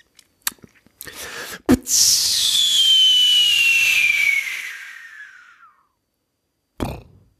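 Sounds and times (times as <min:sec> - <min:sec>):
voice imitating a firework rocket with a descending hissing whistle: 0:01.1 - 0:05.9.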